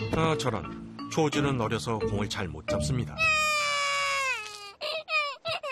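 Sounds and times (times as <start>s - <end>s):
speech: 0.2s - 3.4s
young child crying: 3.2s - 5.6s.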